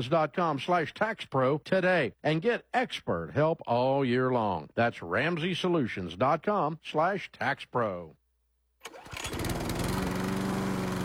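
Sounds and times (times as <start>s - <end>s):
speech: 0.0s - 8.2s
Country Clipper zero-turn mower engine starting and running: 8.8s - 11.0s.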